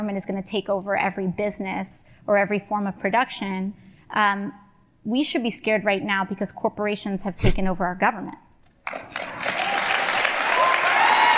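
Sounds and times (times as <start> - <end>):
speech: 0.0 - 8.4
crowd clapping: 8.9 - 11.3.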